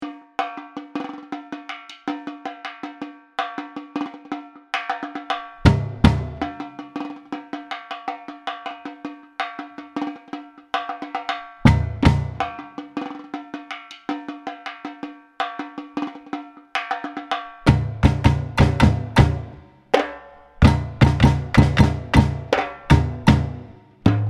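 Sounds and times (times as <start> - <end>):
samba intro: 5.4 - 7.5, 11.5 - 13.0, 17.5 - 24.2.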